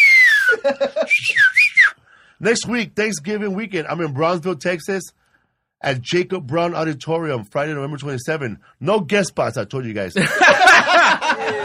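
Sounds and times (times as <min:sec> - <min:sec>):
referee whistle blown with sliding pitch: 0:00.0 - 0:02.0
laughter: 0:00.4 - 0:01.6, 0:10.2 - 0:11.6
speech: 0:00.6 - 0:05.2, 0:05.8 - 0:11.6.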